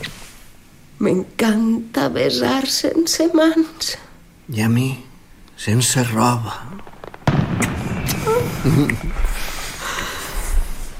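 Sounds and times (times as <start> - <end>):
speech: 1.0 - 6.9, 8.6 - 9.5
fireworks rockets bursting and crackling: 5.6 - 10.9.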